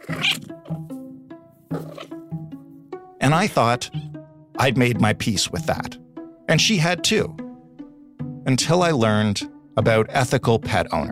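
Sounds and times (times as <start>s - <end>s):
indoor cat muttering at birds through a window screen in Toronto: 0.0s - 0.6s, 1.7s - 2.2s
speech: 0.2s - 1.0s, 3.3s - 4.0s, 4.6s - 7.4s, 8.5s - 11.1s.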